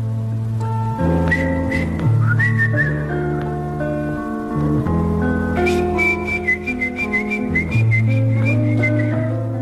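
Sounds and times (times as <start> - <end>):
steady instrumental accompaniment: 0.0 - 9.5
clear high whistled melody: 1.0 - 3.4, 5.4 - 9.5.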